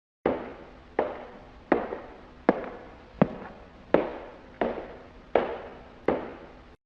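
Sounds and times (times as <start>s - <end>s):
footsteps: 1.7s - 5.8s.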